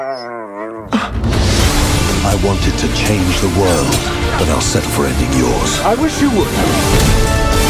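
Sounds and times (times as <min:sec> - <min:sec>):
dog whimpering and howling: 0:00.0 - 0:00.9
speech: 0:02.2 - 0:07.6.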